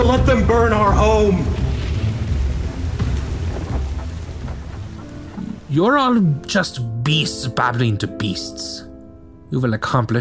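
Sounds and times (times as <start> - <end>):
speech: 0.0 - 1.6, 5.7 - 8.9, 9.5 - 10.1
deep continuous rumble of thunder: 0.0 - 5.8
steady rain: 0.0 - 6.2.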